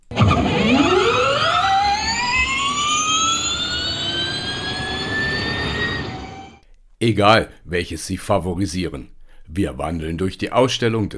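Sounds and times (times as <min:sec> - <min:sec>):
electric car accelerating with a smooth electric whine: 0:00.0 - 0:06.6
speech: 0:07.0 - 0:11.1.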